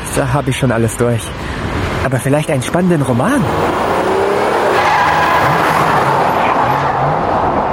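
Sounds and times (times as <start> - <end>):
speeding car engine roaring: 0.0 - 7.7
speech: 0.2 - 4.0
speeding car tires squealing around a curve: 2.8 - 7.7.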